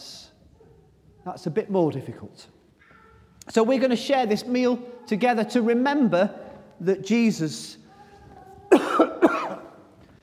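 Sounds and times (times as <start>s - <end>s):
speech: 1.2s - 2.6s, 3.5s - 7.8s
person coughing harshly: 8.7s - 9.8s.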